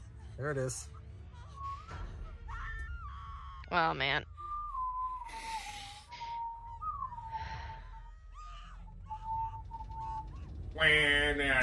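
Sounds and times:
speech: 0:00.4 - 0:01.0, 0:03.7 - 0:04.3, 0:10.8 - 0:11.6
person whistling a TV theme tune: 0:04.4 - 0:10.7.

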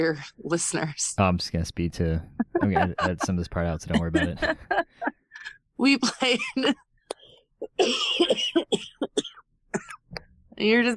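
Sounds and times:
speech: 0:00.0 - 0:05.0, 0:05.8 - 0:06.9, 0:07.7 - 0:09.9, 0:10.6 - 0:10.9
laughter: 0:01.4 - 0:05.1
harsh rasping coughing: 0:02.6 - 0:04.6, 0:07.6 - 0:10.1.

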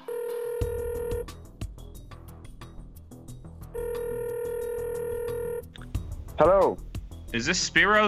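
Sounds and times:
phone call connecting sounds: 0:00.0 - 0:01.2, 0:03.8 - 0:05.9
rapid phone dialing beeps: 0:00.0 - 0:01.2, 0:03.8 - 0:05.6
phone ringing tone: 0:00.0 - 0:01.4, 0:03.8 - 0:05.7
speech: 0:06.4 - 0:08.0.

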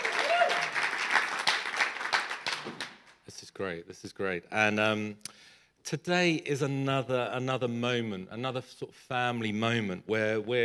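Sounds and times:
scattered whoops: 0:00.0 - 0:00.8
audience cheering: 0:00.0 - 0:02.7
crowd applauding: 0:00.0 - 0:03.2
speech: 0:03.6 - 0:05.3, 0:05.9 - 0:10.6.

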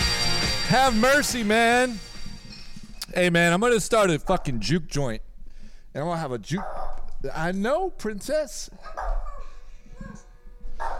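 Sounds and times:
speech: 0:00.7 - 0:02.1, 0:03.1 - 0:05.2, 0:06.0 - 0:09.2
dogs barking: 0:06.5 - 0:07.1, 0:08.8 - 0:10.9.

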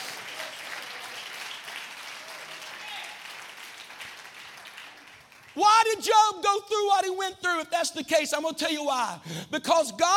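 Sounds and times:
audience clapping hands: 0:00.0 - 0:06.0
speech: 0:05.6 - 0:10.1.

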